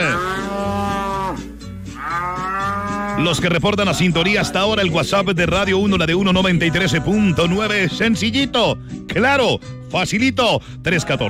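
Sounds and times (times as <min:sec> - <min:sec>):
cattle mooing during milking on a farm: 0:00.0 - 0:04.1, 0:06.1 - 0:08.1
speech: 0:03.2 - 0:11.2.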